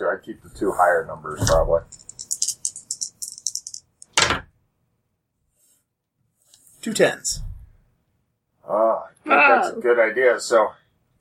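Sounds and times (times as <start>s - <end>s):
speech: 0.0s - 2.1s, 6.8s - 7.5s, 8.7s - 10.8s
two dice rattling in a cup or hand: 1.8s - 4.3s.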